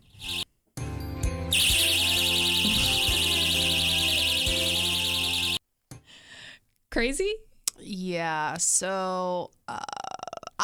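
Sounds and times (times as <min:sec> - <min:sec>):
anti-assault safety pants shrill electronic alarm: 0:00.0 - 0:00.4, 0:01.5 - 0:05.6
speech: 0:07.0 - 0:10.0.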